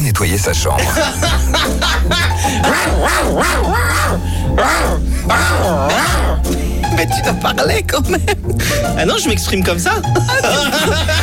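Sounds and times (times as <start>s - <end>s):
speech: 0.2s - 11.2s
laughter: 0.7s - 7.2s, 8.0s - 8.9s, 10.0s - 11.2s
man growling loudly to drive away a female cleaner: 0.8s - 6.5s.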